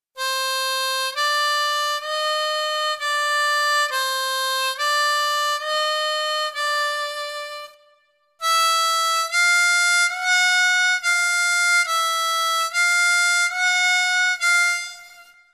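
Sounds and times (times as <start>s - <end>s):
harmonica overblow: 0.2s - 15.5s.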